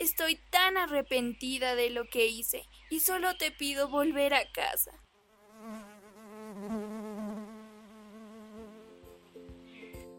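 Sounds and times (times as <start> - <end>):
speech: 0.2 - 5.0, 5.6 - 5.9
bee buzzing: 5.2 - 9.2.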